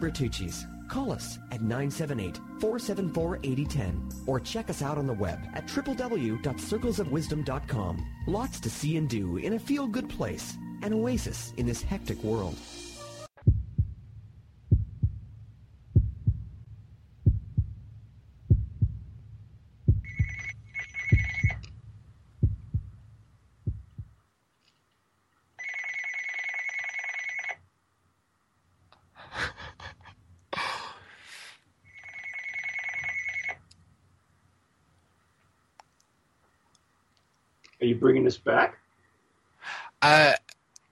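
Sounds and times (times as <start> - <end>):
speech: 0.0 - 12.8, 38.0 - 38.8, 40.0 - 40.4
steady low heartbeat thumps: 13.4 - 16.6, 17.2 - 24.2
telephone ringing in loud buzzing bursts: 20.1 - 21.6, 25.6 - 27.6, 31.9 - 33.6.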